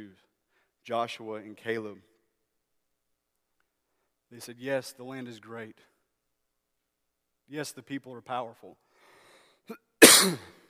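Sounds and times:
speech: 0.8 - 2.1, 4.3 - 5.9, 7.5 - 8.8, 9.7 - 10.6
single harsh explosive cough: 9.7 - 10.6.

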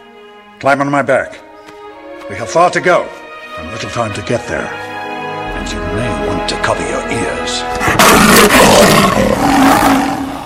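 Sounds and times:
speech: 0.6 - 1.4, 2.3 - 4.8, 5.6 - 10.2
lion roaring with deep rumbling growl: 7.7 - 10.4.

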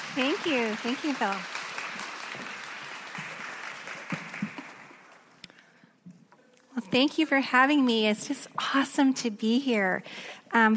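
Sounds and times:
crowd applauding: 0.0 - 5.4
speech: 0.2 - 1.5, 6.9 - 10.7.

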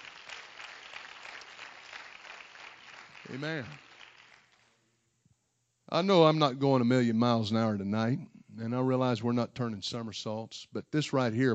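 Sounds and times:
audience clapping hands: 0.0 - 4.8
speech: 3.2 - 3.9, 5.9 - 11.5.

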